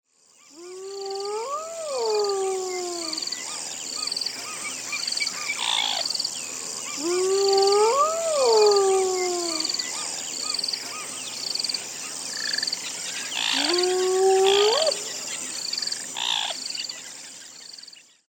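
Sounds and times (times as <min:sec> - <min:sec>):
hyena whooping in Africa: 0:00.6 - 0:03.3, 0:06.9 - 0:10.0, 0:13.4 - 0:15.2.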